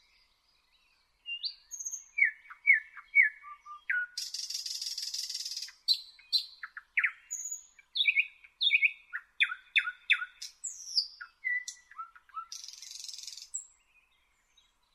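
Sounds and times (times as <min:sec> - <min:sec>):
thrush nightingale Luscinia luscinia song: 0:00.0 - 0:14.9.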